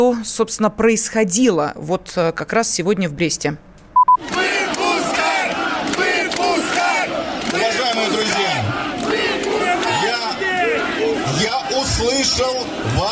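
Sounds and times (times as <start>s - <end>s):
speech: 0.0s - 4.3s, 12.0s - 13.1s
short beep: 4.0s - 4.2s
large protest crowd shouting and chanting demands: 4.2s - 13.1s.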